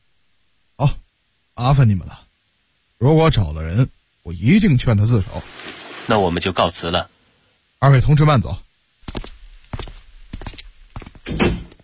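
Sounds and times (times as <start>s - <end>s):
speech: 0.8s - 1.0s, 1.6s - 2.2s, 3.0s - 7.1s, 7.8s - 9.3s
door being shut inside a home: 11.2s - 11.8s.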